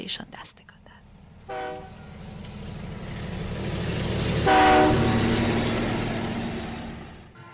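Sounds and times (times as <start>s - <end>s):
speech: 0.0s - 0.6s
train horn blasts: 1.4s - 2.3s, 4.3s - 5.5s, 7.3s - 7.5s
passing train wheels clattering on rails: 1.9s - 7.5s.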